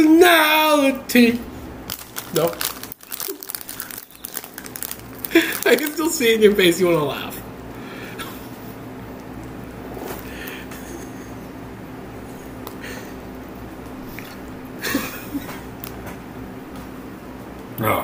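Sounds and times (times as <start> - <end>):
speech: 0.0 - 1.5, 2.3 - 2.7, 5.4 - 7.4
steady low hum: 0.0 - 18.0
wet chewing of a large mouthful of food: 1.9 - 5.8, 14.1 - 14.5.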